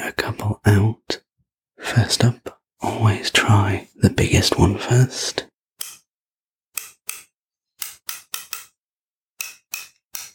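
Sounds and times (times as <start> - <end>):
speech: 2.0 - 5.5
ratchet wrench clicking as it is fitted onto a socket: 6.8 - 8.8, 9.4 - 10.3.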